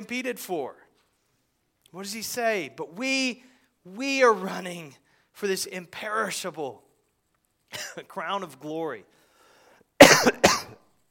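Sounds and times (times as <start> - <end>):
speech: 0.0 - 0.8, 1.9 - 6.8, 7.7 - 9.2
harsh coughs: 7.7 - 8.0, 10.0 - 10.8.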